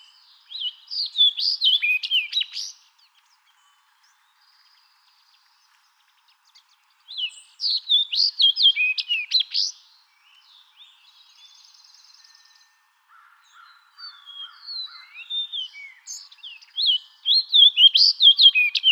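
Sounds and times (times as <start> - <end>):
Fox Sparrow singing: 0.0 - 4.8, 6.4 - 9.8, 14.0 - 18.9.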